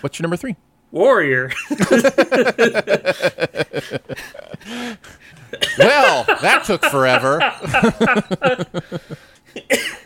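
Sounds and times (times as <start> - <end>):
speech: 0.0 - 10.0
laughter-like pulses: 1.5 - 4.7, 5.5 - 9.2
person coughing from laughter: 5.6 - 6.3, 9.6 - 10.0.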